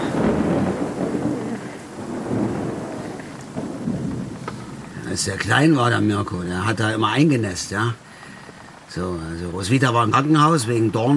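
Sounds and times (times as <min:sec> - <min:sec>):
deep rolling thunder overhead: 0:00.0 - 0:07.7
steady hiss of rain: 0:00.0 - 0:11.1
speech: 0:05.2 - 0:08.1, 0:08.9 - 0:11.1.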